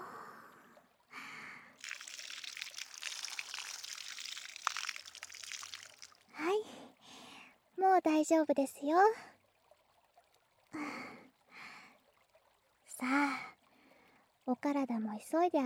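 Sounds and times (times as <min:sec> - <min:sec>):
plenty of hot water poured over someone during a bath: 0:01.8 - 0:06.5
speech: 0:08.0 - 0:09.3, 0:14.6 - 0:15.6.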